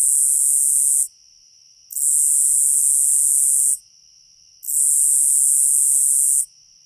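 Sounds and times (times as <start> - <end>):
Nebraska conehead buzzing song: 0.0 - 1.2, 1.9 - 6.6
faint steady tone: 0.8 - 1.9, 3.6 - 4.6, 5.6 - 6.8.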